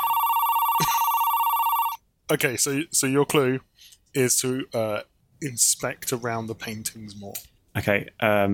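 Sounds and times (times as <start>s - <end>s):
steady electronic telephone tone as a phone call is placed: 0.0s - 2.0s
speech: 0.8s - 1.1s, 2.3s - 8.5s.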